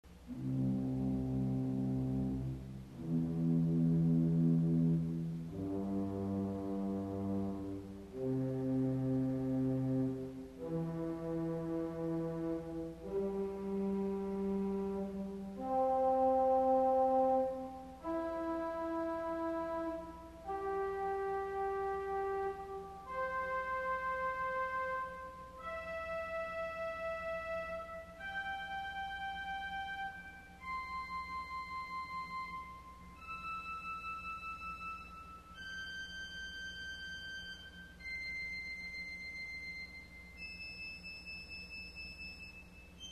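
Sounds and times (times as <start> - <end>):
organ arpeggio on viola celeste stops: 0.3 - 38.6.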